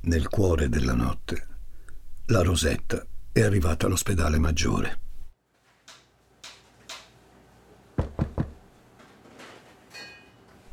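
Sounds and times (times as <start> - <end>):
speech: 0.1 - 1.5, 2.3 - 5.0
faint thuds: 8.0 - 8.6
man knocking hard on a hospital door: 8.0 - 8.6.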